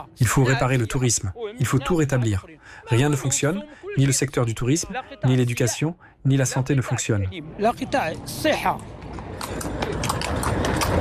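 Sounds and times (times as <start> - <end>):
speech: 0.0 - 9.6
low chatter: 0.0 - 10.7
person calling out: 0.4 - 5.9
horse hooves clopping on pavement: 8.5 - 11.0.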